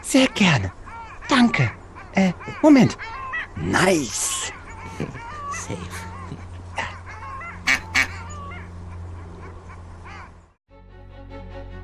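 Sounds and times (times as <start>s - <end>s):
flock of ducks quacking while being fed bread: 0.0s - 10.4s
loud duck squawks: 0.0s - 10.4s
speech: 0.1s - 6.1s
laughter: 4.4s - 7.0s.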